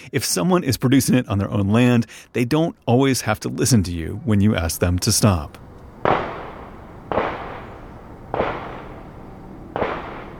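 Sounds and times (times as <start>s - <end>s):
speech: 0.1s - 6.2s
gunshots from a shooting range beside a residential neighborhood: 6.0s - 9.0s, 9.7s - 10.3s.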